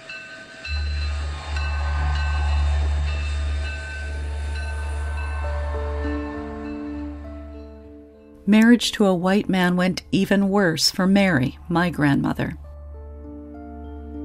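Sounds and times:
train rumbling along rails: 0:00.0 - 0:07.9
faint metallic whines and squeals of a train: 0:00.0 - 0:08.0
speech: 0:08.5 - 0:12.6.

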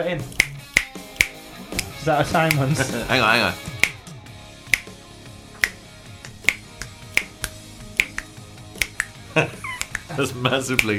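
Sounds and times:
speech: 0:00.0 - 0:00.4, 0:01.6 - 0:03.7, 0:09.4 - 0:09.6, 0:10.2 - 0:10.9
quiet musical backing: 0:00.0 - 0:10.9
finger snaps: 0:00.3 - 0:02.7, 0:03.7 - 0:10.9.

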